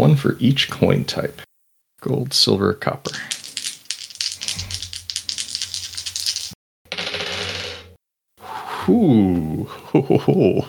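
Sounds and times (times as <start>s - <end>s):
speech: 0.1s - 3.4s, 8.9s - 10.6s
ten-sided dice rattling and tumbling: 3.1s - 7.8s
laughter: 9.7s - 10.6s.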